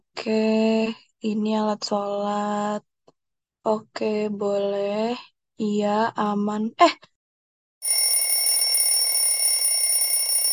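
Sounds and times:
speech: 0.2s - 2.9s, 3.6s - 7.1s
electronic alarm clock bell ringing: 7.8s - 10.5s.

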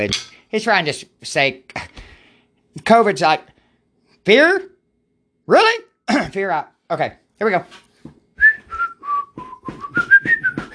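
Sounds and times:
speech: 0.0s - 1.9s, 2.8s - 3.5s, 4.2s - 4.7s, 5.5s - 8.2s
person whistling a short melodic phrase: 8.4s - 10.7s.

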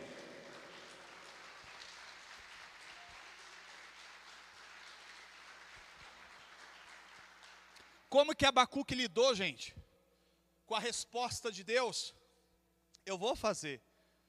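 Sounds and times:
audience applauding: 0.0s - 8.0s
speech: 8.1s - 9.8s, 10.7s - 12.2s, 13.0s - 13.9s.

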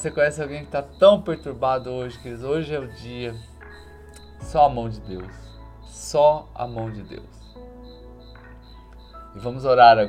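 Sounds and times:
speech: 0.0s - 3.5s, 4.4s - 7.4s, 9.3s - 10.0s
cricket chirping: 0.0s - 10.0s.

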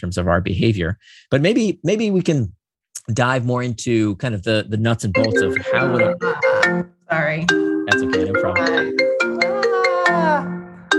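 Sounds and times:
speech: 0.0s - 9.2s
mobile phone ringtone: 5.2s - 6.9s, 7.5s - 10.9s.

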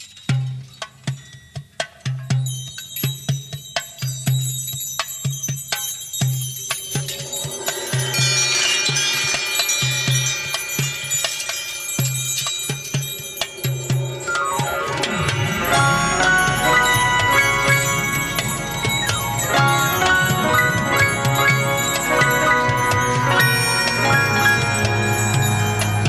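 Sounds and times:
ringing bell tones: 2.4s - 26.0s
instrumental film soundtrack music with bells: 5.9s - 26.0s
pulsing low beat: 14.1s - 26.0s.

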